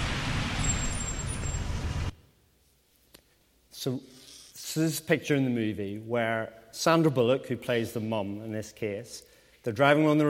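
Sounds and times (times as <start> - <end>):
car braking hard to a stop: 0.0 - 2.1
speech: 3.8 - 10.2.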